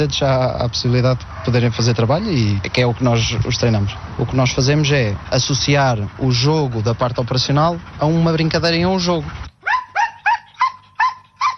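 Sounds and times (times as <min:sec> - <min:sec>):
speech: 0:00.0 - 0:09.5
high-energy working dog barking: 0:01.3 - 0:01.8, 0:09.6 - 0:11.5.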